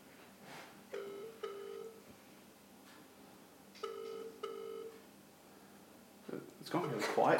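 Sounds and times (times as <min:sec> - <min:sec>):
faint hiss: 0:00.0 - 0:07.3
phone ringback tone heard through the line: 0:01.0 - 0:02.0, 0:03.8 - 0:05.0
speech: 0:06.7 - 0:07.3.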